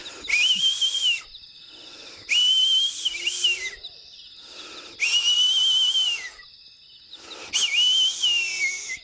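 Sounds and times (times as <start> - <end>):
breathy hiss of whistling: 0.0 - 6.4, 7.0 - 9.0
herder's whistle signal across mountains: 0.3 - 1.3, 2.3 - 3.8, 5.0 - 6.4, 7.6 - 9.0.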